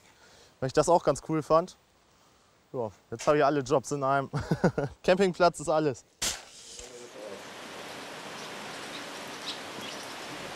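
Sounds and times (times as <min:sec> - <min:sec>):
speech: 0:00.6 - 0:01.8, 0:02.7 - 0:06.2
steady rain falling: 0:06.8 - 0:10.5.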